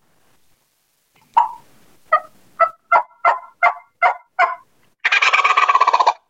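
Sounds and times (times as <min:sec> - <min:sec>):
eastern wild turkey yelping: 0:01.3 - 0:06.2.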